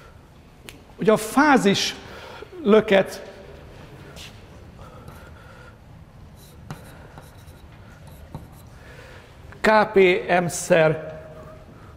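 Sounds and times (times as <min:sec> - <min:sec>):
low hum: 0:00.0 - 0:11.9
speech: 0:01.0 - 0:02.0, 0:02.6 - 0:03.3, 0:09.7 - 0:11.1
handwriting strokes scratching: 0:06.3 - 0:08.7.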